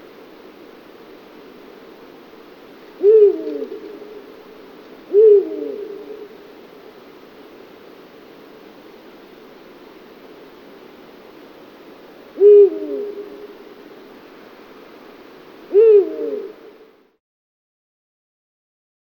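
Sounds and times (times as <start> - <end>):
steady hiss: 0.0 - 17.2
Eurasian eagle-owl low clipped hoots: 3.0 - 6.5, 12.3 - 13.8, 15.7 - 16.9.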